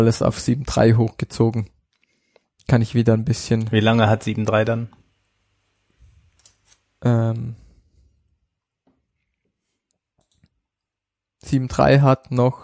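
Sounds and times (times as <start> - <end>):
speech: 0.0 - 1.8, 2.7 - 5.0, 7.0 - 7.6, 11.4 - 12.6
computer mouse clicks on a link: 9.9 - 10.5.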